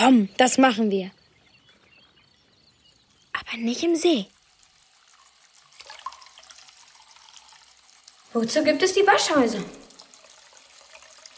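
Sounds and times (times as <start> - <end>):
speech: 0.0 - 1.2, 3.4 - 4.3, 8.4 - 9.8
water running from a tap into a plugged washbasin: 3.1 - 11.3.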